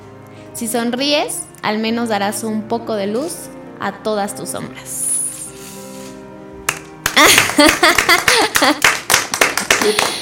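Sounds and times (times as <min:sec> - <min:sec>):
speech: 0:00.6 - 0:05.1, 0:07.6 - 0:09.0, 0:09.8 - 0:10.2
person clapping hands: 0:06.7 - 0:10.2
laughter: 0:07.2 - 0:09.0.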